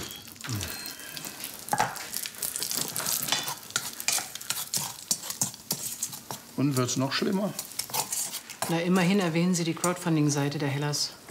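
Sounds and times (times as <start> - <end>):
bacon sizzling in a pan for scrambled eggs: 0.0 - 10.1
stirring scrapes in a pan: 2.8 - 9.3
speech: 6.6 - 7.7, 8.7 - 11.2.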